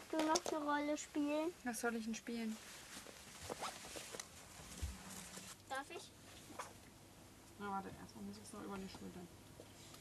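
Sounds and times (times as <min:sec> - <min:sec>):
speech: 0:00.1 - 0:03.1, 0:07.6 - 0:09.4
zipper on clothing being closed: 0:03.5 - 0:03.8.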